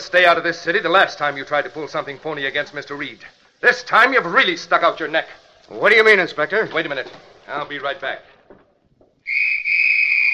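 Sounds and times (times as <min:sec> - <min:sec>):
speech: 0:00.0 - 0:08.6
shrill steady whistle being blown: 0:09.2 - 0:10.3.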